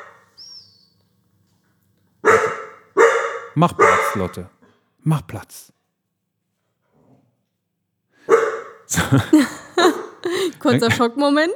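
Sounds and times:
dog just woken barking loudly: 0.0 - 0.5, 2.2 - 4.5, 8.3 - 8.9
speech: 3.6 - 5.8, 8.9 - 10.0, 10.6 - 11.5
laughter: 8.9 - 11.4.

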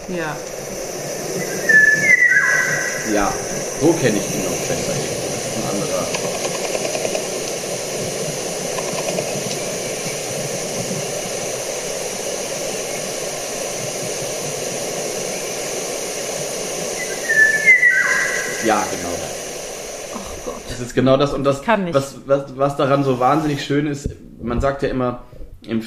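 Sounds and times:
steady hiss and hum: 0.0 - 25.8
speech: 0.1 - 1.8, 3.1 - 5.7, 18.6 - 19.0, 21.0 - 25.8
whistled imitation of golden oriole fluty song: 1.4 - 3.4, 16.9 - 19.1.

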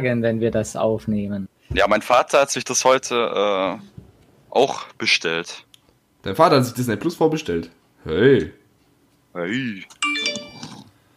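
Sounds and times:
speech: 0.0 - 8.6, 9.3 - 10.0
mobile phone ringing with a bright electronic jingle: 10.0 - 10.8.

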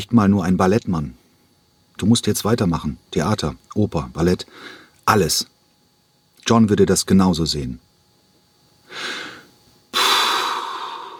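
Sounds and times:
speech: 0.0 - 1.2, 2.0 - 5.5, 6.4 - 7.9
man puffing out a heavy breath: 8.9 - 11.1.

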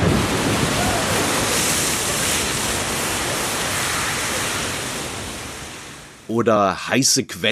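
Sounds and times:
hissing steam from an erupting geyser: 0.0 - 6.3
rushing water from an erupting geyser: 0.0 - 6.4
speech: 6.3 - 7.4.

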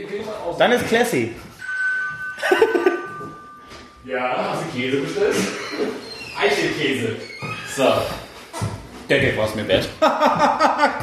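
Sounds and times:
speech: 0.3 - 1.5, 4.1 - 8.2, 9.1 - 11.0
doorbell chime ringing with bright melodic tones: 1.6 - 4.7
laughter: 2.4 - 3.1, 9.9 - 11.0.

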